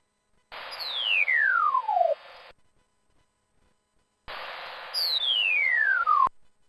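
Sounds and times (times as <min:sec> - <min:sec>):
buzzy electronic hiss: 0:00.5 - 0:06.6
descending sonification tone from a white cane: 0:00.7 - 0:02.2, 0:04.9 - 0:06.3.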